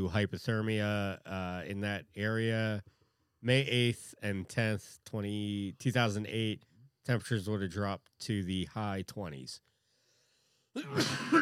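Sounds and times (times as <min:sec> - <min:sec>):
speech: 0:00.0 - 0:09.7, 0:10.8 - 0:11.4
person sneezing: 0:10.8 - 0:11.4.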